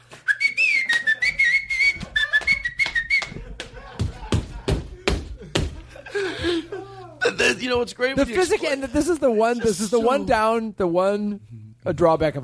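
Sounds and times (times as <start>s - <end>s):
person whistling a tune to pump up a crowd: 0.2s - 3.4s
laughter: 0.4s - 7.4s, 8.3s - 10.5s
speech: 7.6s - 12.4s.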